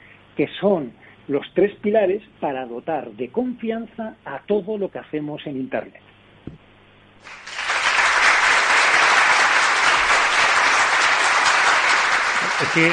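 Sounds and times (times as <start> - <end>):
speech: 0.4 - 6.1, 12.6 - 12.9
applause from a few people: 7.2 - 12.9.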